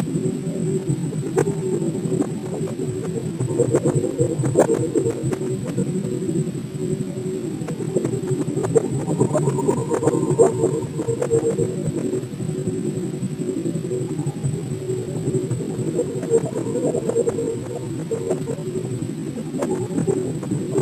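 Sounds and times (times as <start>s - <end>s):
digital distortion: 0.0s - 20.8s.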